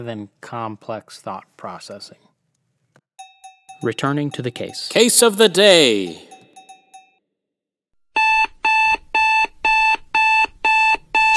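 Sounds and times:
speech: 0.0 - 2.3, 3.8 - 6.3
loud electronic alarm clock beeping: 3.2 - 7.1, 8.2 - 11.3.

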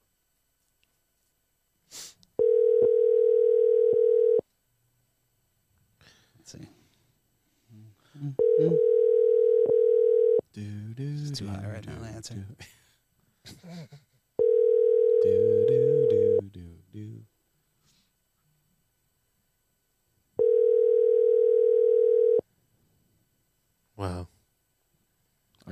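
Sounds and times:
outgoing phone call ringback tones: 2.4 - 4.4, 8.4 - 10.4, 14.4 - 16.4, 20.4 - 22.4
speech: 11.4 - 12.8, 13.6 - 14.1, 16.6 - 17.3.

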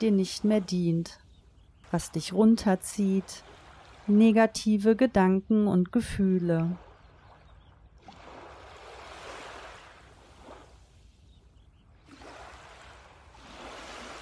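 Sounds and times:
speech: 0.0 - 1.2, 1.9 - 3.5, 4.1 - 6.9
ocean waves washing onto the shore: 2.0 - 4.4, 8.0 - 11.3, 12.0 - 14.2.

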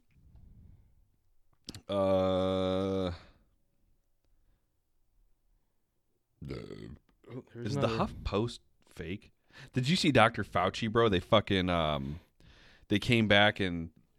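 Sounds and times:
loud deep drawn-out burp: 1.7 - 3.4, 6.4 - 8.1
short belch-like grunt: 1.7 - 3.4, 6.4 - 8.2
speech: 1.9 - 2.6, 7.8 - 12.2, 12.9 - 14.0.

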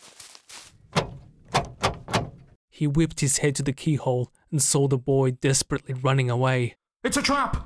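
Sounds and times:
locked wooden door shoved and rattled against its frame: 0.8 - 2.6
speech: 2.8 - 7.6.

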